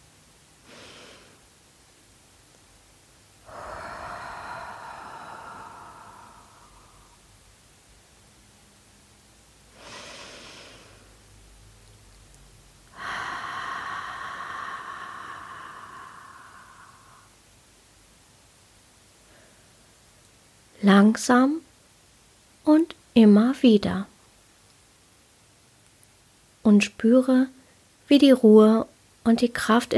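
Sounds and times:
slow deep breathing in and out: 0.6 - 1.5, 3.4 - 7.5, 9.7 - 11.3, 12.8 - 17.5, 19.2 - 20.0
speech: 20.8 - 21.6, 22.7 - 24.1, 26.7 - 29.9.

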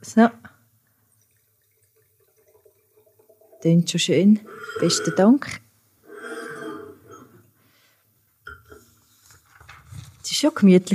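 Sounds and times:
speech: 0.0 - 0.4, 3.6 - 5.6, 10.4 - 10.9
red wine pouring into glasses: 0.9 - 7.6.

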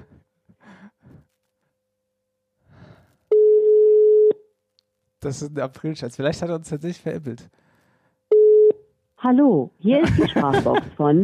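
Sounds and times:
telephone ringback tone on an outgoing phone call: 3.3 - 4.4, 8.3 - 8.8
speech: 5.3 - 7.6, 9.2 - 11.2
laughter: 10.0 - 11.1.

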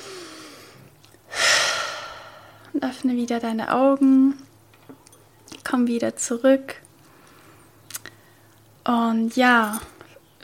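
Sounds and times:
deep breath in and out during a guided relaxation exercise: 0.0 - 2.7
speech: 2.7 - 4.4, 5.7 - 6.8, 8.9 - 10.4.

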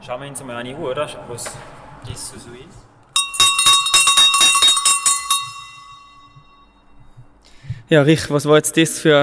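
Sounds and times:
speech: 0.0 - 2.9, 7.9 - 9.2
classic sheet-metal livestock bell clanking in an exhibition: 3.2 - 7.0.

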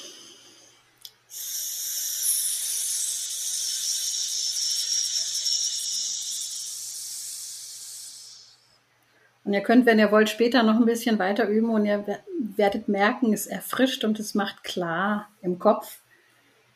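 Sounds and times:
hissing exhale through the teeth in a circular breathing exercise: 1.3 - 8.8
speech: 9.5 - 16.0.

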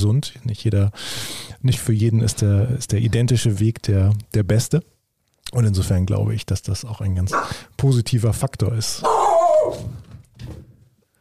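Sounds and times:
speech: 0.0 - 4.9, 5.5 - 9.9
dog barking: 7.3 - 7.6.

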